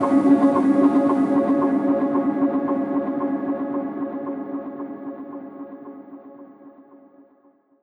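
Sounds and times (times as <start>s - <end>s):
hypnotic guitar in C: 0.0s - 7.4s.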